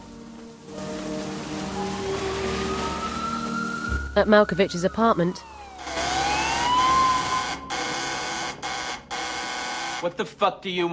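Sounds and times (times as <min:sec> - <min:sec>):
pouring rain on wet city streets at night: 0:00.0 - 0:08.6
speech: 0:04.2 - 0:05.5, 0:10.0 - 0:10.9.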